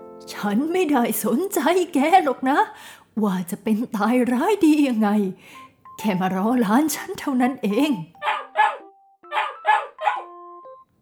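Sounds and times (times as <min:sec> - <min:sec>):
speech: 0:00.2 - 0:08.2
dog barking: 0:08.2 - 0:10.3.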